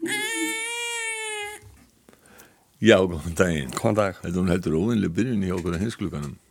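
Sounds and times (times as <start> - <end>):
newborn baby crying: 0.0 - 1.7
quiet breathing: 2.0 - 2.8
speech: 2.8 - 6.4.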